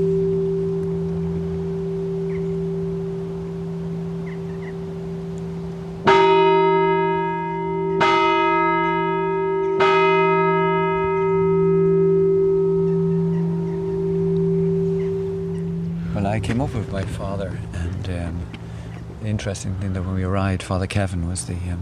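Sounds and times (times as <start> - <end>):
low hum: 0.0 - 6.2, 11.1 - 19.8
large monastery bell ringing: 0.0 - 18.9
speech: 16.7 - 18.6, 19.2 - 21.7.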